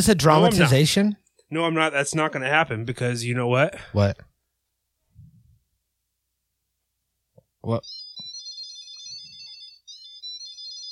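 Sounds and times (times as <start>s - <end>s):
speech: 0.0s - 4.3s, 7.6s - 8.0s
key finder fob on metal keys playing a tinny high-pitched electronic melody: 7.8s - 10.9s.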